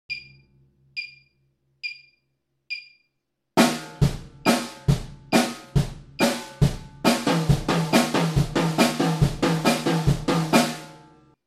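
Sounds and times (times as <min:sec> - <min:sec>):
drum break in double eighth notes: 0:03.6 - 0:11.0.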